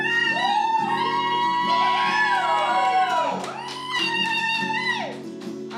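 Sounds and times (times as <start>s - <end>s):
crowd screaming and cheering with high voices: 0.0s - 5.4s.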